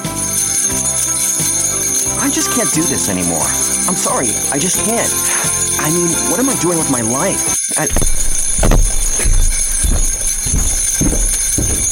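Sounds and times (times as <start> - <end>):
sleigh bells ringing: 0.0 - 11.8
speech: 2.3 - 8.2.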